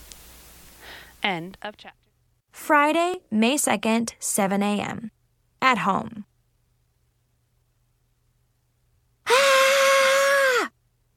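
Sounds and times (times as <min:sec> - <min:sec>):
speech: 0:01.2 - 0:02.0, 0:02.6 - 0:06.3
person screaming in terror: 0:09.3 - 0:10.7.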